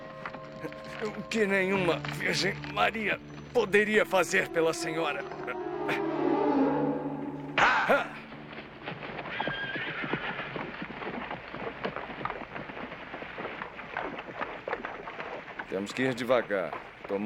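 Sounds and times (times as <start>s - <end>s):
horse hooves clopping on firm ground: 0.0s - 6.1s, 7.0s - 17.2s
speech: 0.6s - 6.2s, 15.8s - 17.2s
horse laden with a dead body whinnying: 4.4s - 8.3s, 9.2s - 10.9s.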